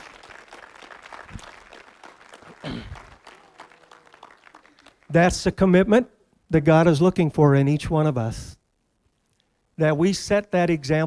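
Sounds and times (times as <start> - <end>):
congregation applauding: 0.0 - 5.2
speech: 5.1 - 8.6, 9.8 - 11.0.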